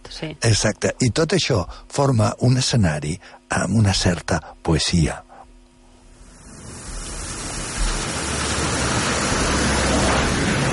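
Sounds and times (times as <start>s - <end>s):
speech: 0.2s - 5.2s
steady rain pouring down: 6.3s - 10.7s.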